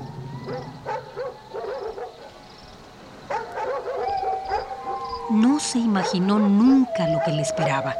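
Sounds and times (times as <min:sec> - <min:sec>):
dogs barking: 0:00.4 - 0:02.4, 0:03.3 - 0:05.1, 0:05.8 - 0:07.9
speech: 0:05.3 - 0:07.9.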